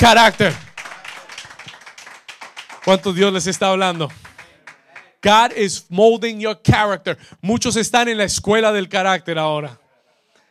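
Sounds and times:
speech: 0.0s - 0.6s, 2.9s - 4.2s, 5.2s - 9.8s
crowd clapping hands: 0.0s - 5.6s.

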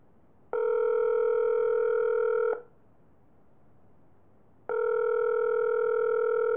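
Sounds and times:
phone ringback tone on an outgoing call: 0.6s - 2.6s, 4.7s - 6.5s.

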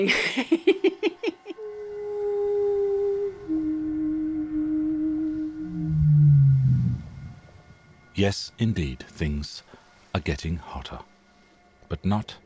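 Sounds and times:
speech: 0.0s - 0.8s, 8.2s - 11.1s, 11.9s - 12.4s
laughter: 0.0s - 1.6s
long low whale call with moans and groan: 1.6s - 8.0s
faint underwater hiss: 1.7s - 12.4s.

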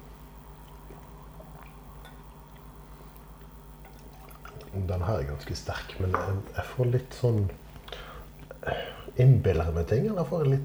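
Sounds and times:
steady low hum: 0.0s - 10.6s
water drips and trickle pouring into a glass: 0.4s - 4.8s
speech: 4.7s - 7.6s, 9.2s - 10.6s.

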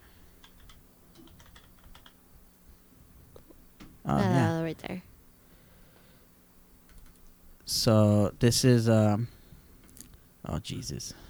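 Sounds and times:
typing on a computer keyboard: 0.2s - 2.2s, 6.8s - 7.3s
speech: 7.8s - 9.4s, 10.5s - 11.2s.

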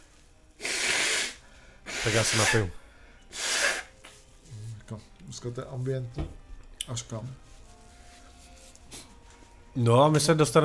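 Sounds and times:
forceful nose blow: 0.6s - 2.7s, 3.3s - 4.0s
speech: 2.0s - 3.4s, 4.9s - 7.5s, 9.8s - 10.6s.

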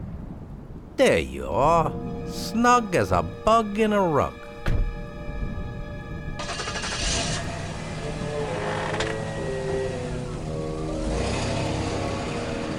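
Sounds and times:
speech: 1.0s - 4.8s
coupe engine pulling away from a service station at night: 6.4s - 12.7s.

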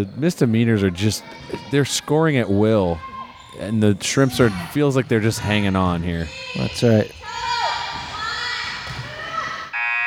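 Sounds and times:
speech: 0.0s - 7.5s
murmuring voices in an arena: 0.0s - 9.7s
sneakers squeaking in an arena: 1.2s - 9.8s
basketball game buzzer blaring: 9.7s - 10.0s.

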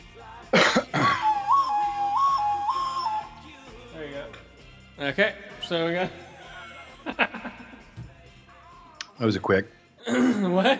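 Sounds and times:
person coughing: 0.6s - 1.2s, 10.0s - 10.6s
person whistling a short tune: 1.0s - 3.8s
speech: 5.0s - 6.2s, 9.2s - 10.7s
laughter: 5.8s - 8.0s, 10.1s - 10.7s.

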